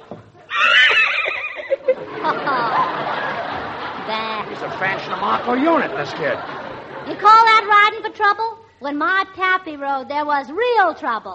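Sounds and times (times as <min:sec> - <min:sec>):
laughter: 0:00.4 - 0:08.2
horse neighing in a long shrill whinny: 0:00.5 - 0:01.8
speech: 0:04.6 - 0:11.3.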